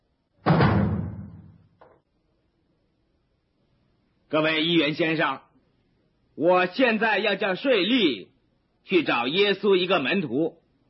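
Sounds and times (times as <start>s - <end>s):
heavy door slamming shut: 0.4s - 1.8s
speech: 4.3s - 5.5s, 6.4s - 10.6s.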